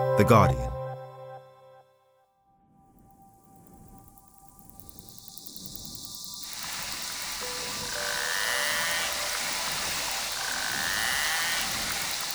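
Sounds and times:
speech: 0.2s - 0.7s
underwater chorus of narwhal clicks and buzzing: 3.0s - 12.3s.

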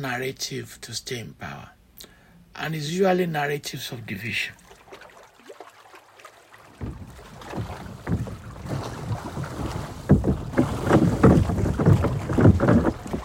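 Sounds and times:
speech: 0.0s - 1.8s, 2.6s - 4.6s
boat hull splashing on open water: 4.1s - 13.2s
boat engine rumble on open water: 4.2s - 13.2s.

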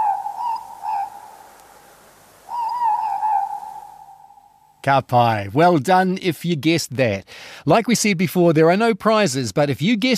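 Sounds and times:
morepork owl two-note hoot: 0.0s - 4.8s
speech: 4.8s - 10.1s.

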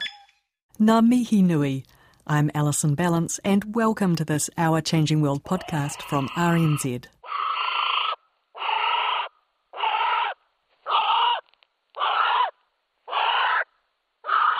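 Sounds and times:
speech: 0.8s - 7.2s
female North Island brown kiwi calling: 5.6s - 14.5s.

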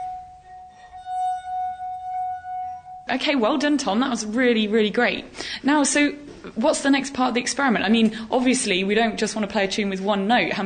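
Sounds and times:
wine glass rim ringing from being rubbed: 0.0s - 3.2s
speech: 3.1s - 10.6s.

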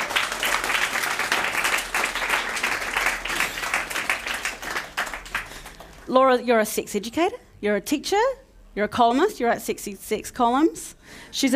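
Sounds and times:
audience applause: 0.0s - 6.1s
speech: 6.1s - 11.5s.

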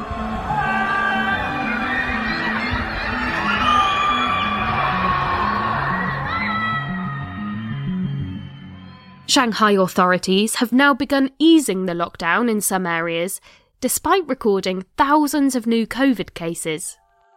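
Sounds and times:
residents screaming and shouting from windows: 0.0s - 9.3s
speech: 9.3s - 17.0s.

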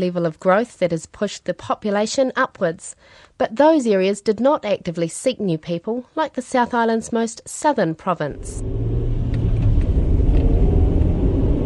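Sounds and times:
speech: 0.0s - 9.0s
car driving on smooth State Highway 1 in New Zealand's South Island: 8.3s - 11.6s.

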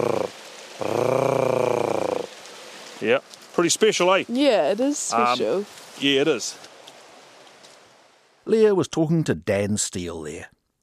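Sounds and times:
female blue duck purring growl call: 0.0s - 2.3s
speech: 3.0s - 6.7s, 8.5s - 10.5s.

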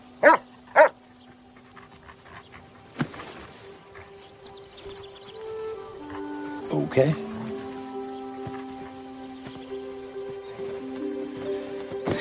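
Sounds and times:
drone of crickets or insects: 0.0s - 12.1s
dog barking: 0.2s - 1.0s
speech: 6.8s - 7.3s.

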